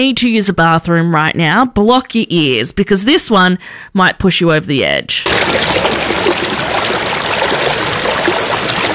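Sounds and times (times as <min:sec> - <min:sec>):
speech: 0:00.0 - 0:06.4
running water of a flowing stream: 0:05.3 - 0:08.9.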